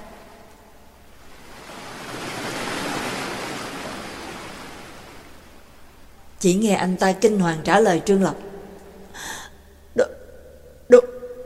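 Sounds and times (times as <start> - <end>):
ocean waves crashing against a rock cliff: 1.2 - 5.9
speech: 6.4 - 8.5.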